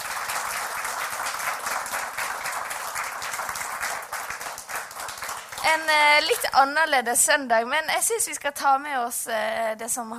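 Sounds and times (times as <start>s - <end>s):
audience applause thanking speakers: 0.0s - 5.8s
speech: 5.6s - 10.1s.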